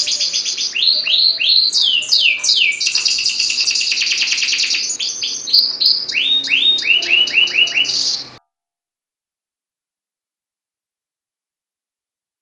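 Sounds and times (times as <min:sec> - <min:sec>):
domestic Atlantic canary of standard type singing: 0:00.0 - 0:08.4.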